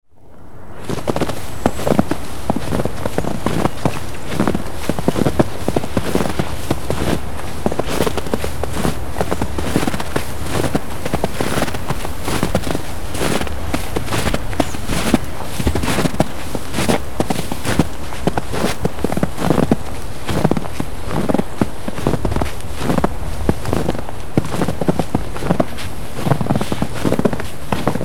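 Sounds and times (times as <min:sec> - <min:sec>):
footsteps in snow: 0:00.7 - 0:28.0.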